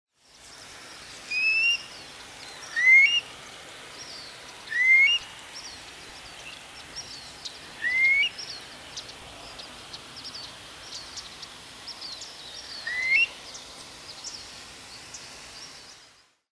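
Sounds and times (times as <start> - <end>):
Long-billed Curlew Numenius americanus calling: 1.3 - 3.3, 4.6 - 5.3, 6.4 - 11.5, 12.6 - 13.4.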